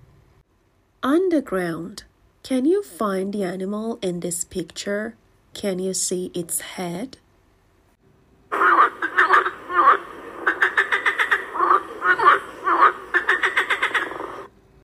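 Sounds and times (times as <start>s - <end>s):
speech: 1.0s - 7.2s
frog croaking with rasping calls and rattling clicks: 8.5s - 14.5s.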